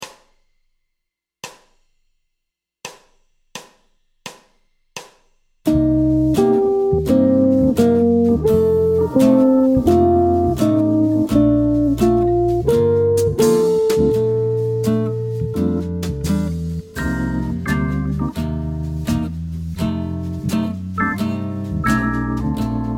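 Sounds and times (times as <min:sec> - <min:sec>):
jazz guitar arpeggios over a ii V I progression in a major key: 0:05.7 - 0:22.9.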